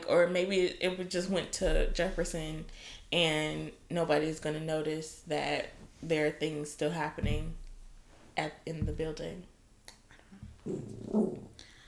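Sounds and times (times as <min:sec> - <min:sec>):
speech: 0:00.1 - 0:07.6, 0:08.4 - 0:09.5, 0:10.6 - 0:11.6
dog growling low and rumbling: 0:10.6 - 0:11.6.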